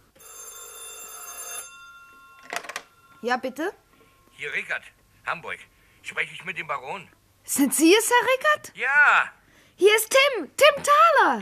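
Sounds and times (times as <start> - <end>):
telephone bell ringing with an incoming call from Hamburg: 0.0 - 4.6
faint hum: 1.8 - 10.5
speech: 3.2 - 3.8, 4.4 - 11.4.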